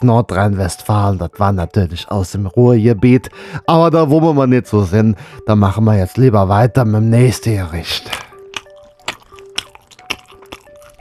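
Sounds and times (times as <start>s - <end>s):
speech: 0.0s - 8.3s
wet smacking and chewing of someone eating kale: 8.0s - 10.9s.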